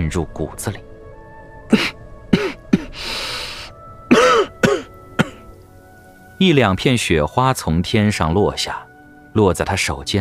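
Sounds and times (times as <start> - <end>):
cold wind rushing: 0.0 - 6.4
speech: 0.1 - 0.9, 1.7 - 2.0, 6.4 - 10.1
man wounded by an arrow coughing softly: 4.1 - 5.4.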